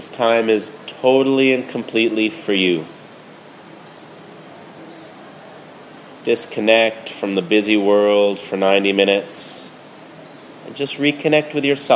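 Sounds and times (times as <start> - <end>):
speech: 0.0 - 3.0, 6.2 - 9.6, 10.7 - 11.9
high bird chirps: 0.0 - 6.8, 9.1 - 11.1
cicadas droning: 0.0 - 11.9.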